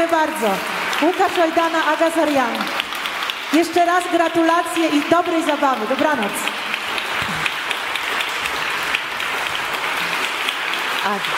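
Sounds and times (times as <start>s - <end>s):
speech: 0.0s - 2.8s, 3.5s - 6.5s, 11.1s - 11.3s
audience applause after a jazz arrangement: 0.0s - 11.3s.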